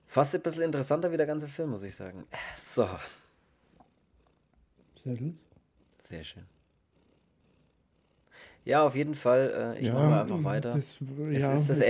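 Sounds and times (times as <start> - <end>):
speech: 0.2 - 3.2, 5.0 - 5.5, 6.1 - 6.6, 8.6 - 11.8
cat purring against the microphone: 3.1 - 9.0.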